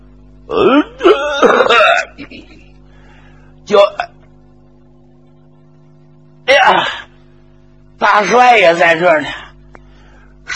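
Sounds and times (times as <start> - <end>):
voice imitating a rough throat-clearing cough: 0.5 - 2.7, 3.7 - 4.2, 6.5 - 7.1
speech: 3.7 - 4.1, 8.2 - 9.4.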